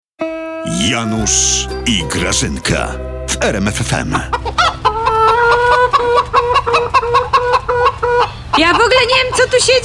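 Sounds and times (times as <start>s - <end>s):
speech: 0.6s - 4.6s, 7.0s - 9.8s
chickens clucking: 3.9s - 9.8s.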